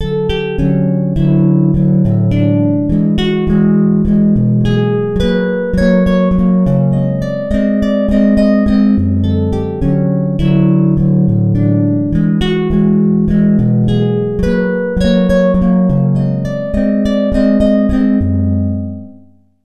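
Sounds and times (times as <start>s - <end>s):
dry guitar loop: 0.0s - 19.4s.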